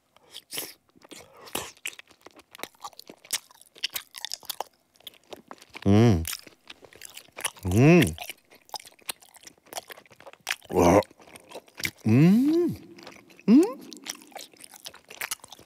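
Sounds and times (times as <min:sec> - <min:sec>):
crunchy chewing of raw carrot: 0:00.2 - 0:15.6
eater making short loud voiced sounds: 0:05.8 - 0:06.3, 0:07.6 - 0:08.2, 0:10.7 - 0:11.1, 0:12.0 - 0:14.3
speech: 0:07.8 - 0:08.2.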